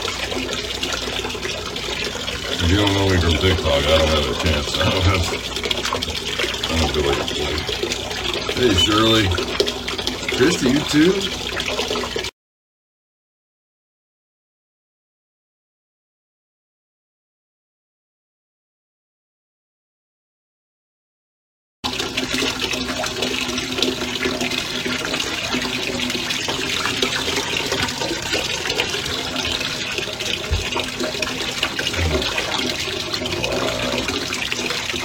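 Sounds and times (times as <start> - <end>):
water gushing from a bathtub hot tap: 0.0 - 12.3, 21.8 - 35.0
speech: 2.7 - 9.7, 10.4 - 11.4.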